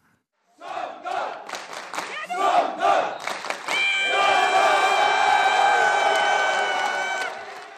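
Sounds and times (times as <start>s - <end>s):
crowd cheering and howling over a village football team's promotion: 2.6s - 7.7s.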